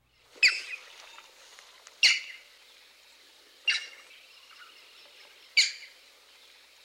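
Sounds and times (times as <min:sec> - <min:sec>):
Green Heron giving loud skiao calls: 0:00.4 - 0:01.3, 0:02.0 - 0:02.5, 0:03.6 - 0:06.0.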